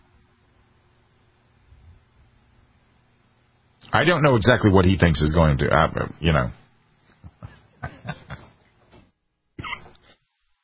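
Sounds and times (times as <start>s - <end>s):
speech: 3.9s - 6.6s
person laughing in breathy bursts: 7.1s - 8.6s, 9.6s - 10.0s
person coughing roughly while laughing: 9.6s - 10.0s.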